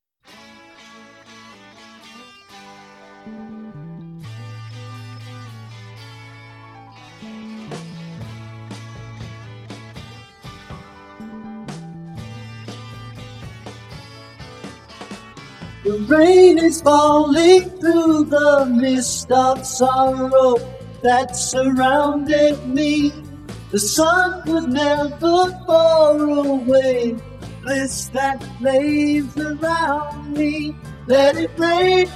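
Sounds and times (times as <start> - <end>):
isolated lead vocals singing: 15.9 - 32.1.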